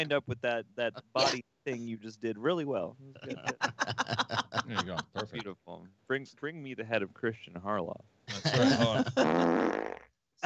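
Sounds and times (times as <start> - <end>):
laughter: 0.0 - 5.5, 7.7 - 9.5
speech: 0.0 - 10.4
fart sound effect from a soundboard: 8.8 - 10.0.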